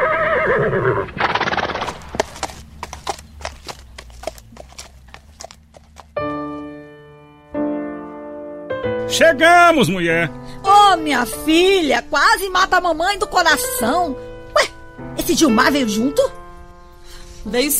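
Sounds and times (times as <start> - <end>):
mare neighing loudly: 0.0 - 6.0
mare's hooves clip-clopping: 1.7 - 6.7
speech: 9.2 - 14.3, 15.2 - 16.4, 17.5 - 17.7.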